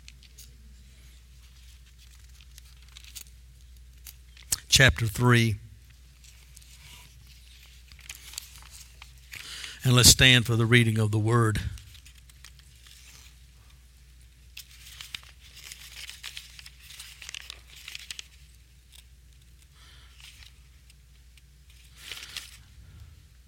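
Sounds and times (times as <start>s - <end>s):
thin book pages crinkling as they are crumpled and turned: 0.0s - 4.5s, 6.2s - 9.6s, 11.8s - 13.4s, 14.2s - 21.0s, 21.7s - 22.6s
speech: 4.8s - 5.6s, 9.9s - 11.8s.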